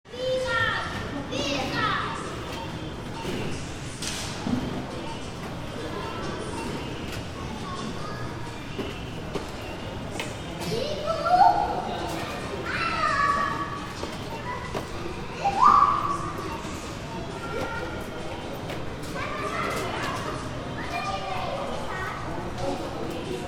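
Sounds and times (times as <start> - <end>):
shopping center local store ambience: 0.1 - 23.4.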